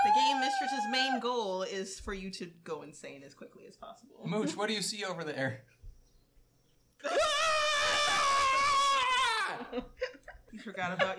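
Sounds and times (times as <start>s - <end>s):
person screaming a single sustained high-pitched scream: 0.0s - 1.2s, 7.0s - 9.8s
speech: 0.6s - 5.8s, 7.0s - 7.7s, 9.5s - 11.1s.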